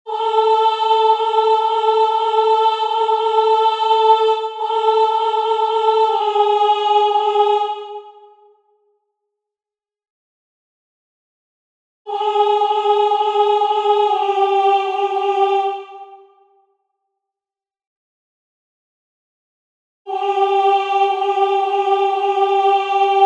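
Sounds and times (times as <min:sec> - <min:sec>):
soprano singing: 0:00.1 - 0:08.1, 0:12.1 - 0:16.2, 0:20.1 - 0:23.2.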